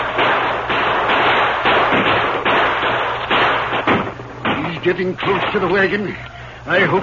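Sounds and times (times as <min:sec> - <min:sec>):
dense rifle fire volley in repeated bursts: 0:00.0 - 0:05.8
speech: 0:04.8 - 0:07.0.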